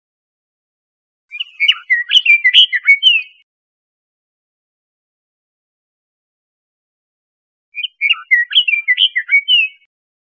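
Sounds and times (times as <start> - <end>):
bird singing in Costa Rica: 1.3 - 3.5, 7.8 - 9.9.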